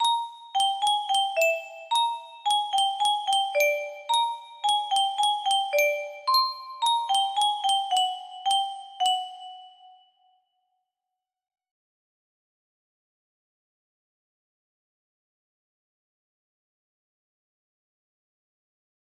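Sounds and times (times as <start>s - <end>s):
lobby theme music box melody: 0.0s - 10.2s.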